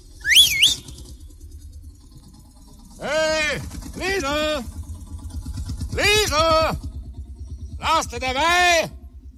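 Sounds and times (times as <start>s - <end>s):
low rumbling noise: 0.0s - 9.3s
man whistling to call a tractor driver: 0.2s - 1.1s
speech: 3.0s - 4.8s, 6.0s - 6.8s, 7.8s - 9.0s.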